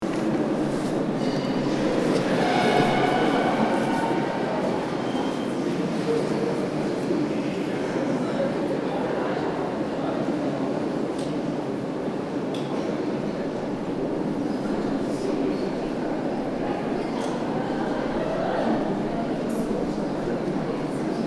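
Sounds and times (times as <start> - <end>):
underground metro hallway passage ambience: 0.0 - 21.2.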